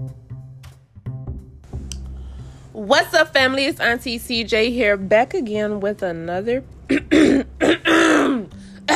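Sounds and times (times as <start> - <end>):
speech: 2.7 - 7.0
person clearing throat: 6.9 - 8.9.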